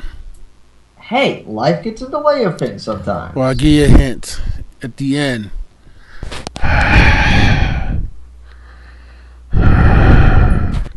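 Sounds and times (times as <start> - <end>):
speech: 1.1 - 5.6
heavy rasping respirator-style breathing: 5.9 - 10.9.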